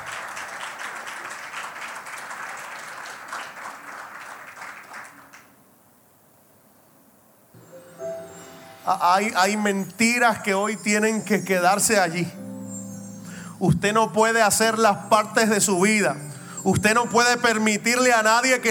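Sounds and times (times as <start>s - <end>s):
audience applauding: 0.0s - 5.6s
speech: 8.9s - 12.4s, 13.6s - 18.6s.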